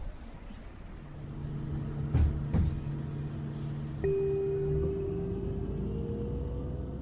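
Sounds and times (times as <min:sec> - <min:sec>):
engine rumble inside a moving city bus: 0:00.0 - 0:07.0
dull knocks: 0:02.0 - 0:03.0.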